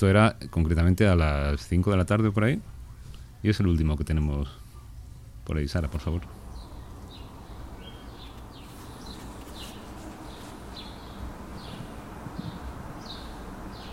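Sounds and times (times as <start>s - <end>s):
speech: 0.0s - 2.8s, 3.4s - 4.6s, 5.4s - 6.4s
constant broadband hiss: 0.0s - 13.9s
birds singing outdoors: 4.6s - 13.9s.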